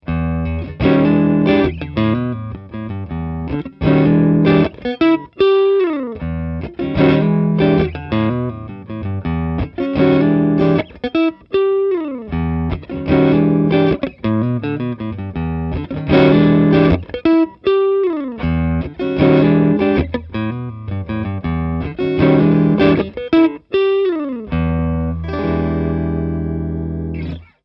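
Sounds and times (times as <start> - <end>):
electric guitar: 0.0 - 27.6.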